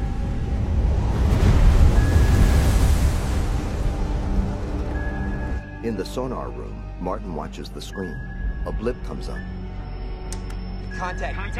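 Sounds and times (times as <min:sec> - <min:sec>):
waves churning against a ship moving across a choppy ocean: 0:00.0 - 0:05.2
speech: 0:05.9 - 0:09.6, 0:11.0 - 0:11.5.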